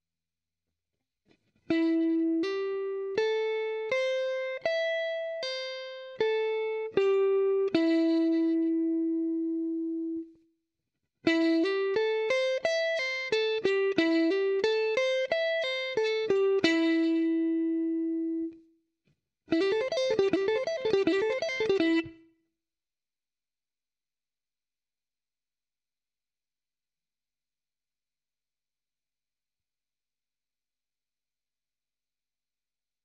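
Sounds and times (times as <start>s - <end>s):
three-string guitar sweep picking lick in A minor seventh: 1.7s - 10.2s, 11.3s - 18.5s, 19.5s - 22.2s.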